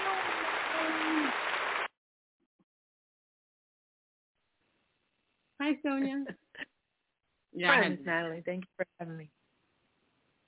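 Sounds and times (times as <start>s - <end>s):
audience applause: 0.0s - 1.9s
speech: 5.7s - 6.7s, 7.5s - 9.4s.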